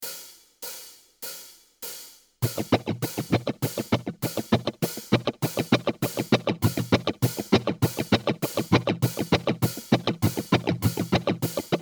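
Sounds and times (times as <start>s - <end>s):
strumming: 2.4s - 11.7s.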